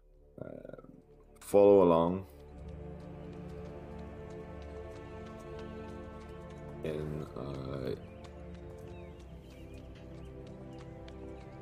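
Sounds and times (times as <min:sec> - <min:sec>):
sustained tonal music: 0:00.0 - 0:11.5
speech: 0:01.5 - 0:02.3, 0:06.8 - 0:08.1
horse hooves clopping on soft wet ground: 0:02.2 - 0:11.5.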